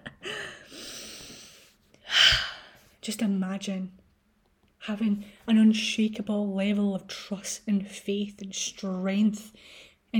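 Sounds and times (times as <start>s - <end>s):
long noisy deep inhalation: 0.3s - 2.8s
speech: 3.1s - 4.0s, 4.8s - 10.1s.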